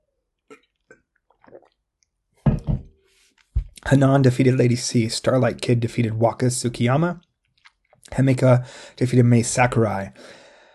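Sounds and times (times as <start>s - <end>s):
person sipping water: 0.4s - 1.8s
person gulping water: 0.4s - 1.9s
speech: 3.9s - 7.3s, 8.2s - 10.4s.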